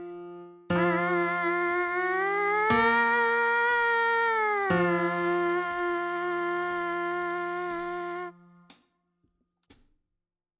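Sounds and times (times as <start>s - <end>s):
MPC sampler buzz: 0.7s - 8.5s.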